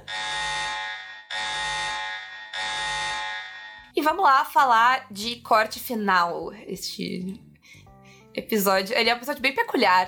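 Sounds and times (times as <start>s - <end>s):
loud harsh spoiler alarm sound effect buzzer: 0.0s - 3.9s
speech: 4.0s - 7.5s, 8.4s - 10.0s.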